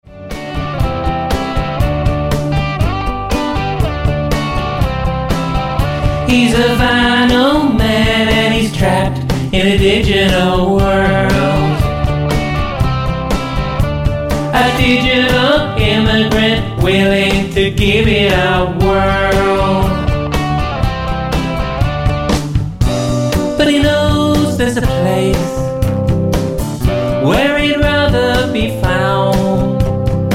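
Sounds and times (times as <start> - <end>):
band playing: 0.1 - 30.3.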